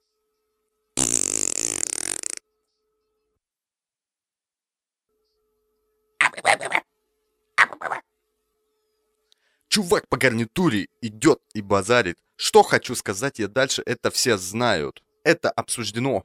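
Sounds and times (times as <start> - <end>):
long buzzing fart: 1.0 - 2.5
speech: 9.8 - 16.2.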